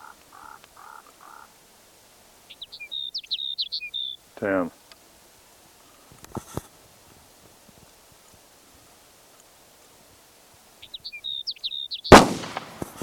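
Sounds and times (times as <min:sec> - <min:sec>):
bird calling with high thin chirps: 0:02.5 - 0:04.2, 0:10.8 - 0:13.0
speech: 0:04.4 - 0:04.8
rustling: 0:04.8 - 0:10.2, 0:12.1 - 0:13.0
sharp loud noisy burst: 0:12.1 - 0:13.0.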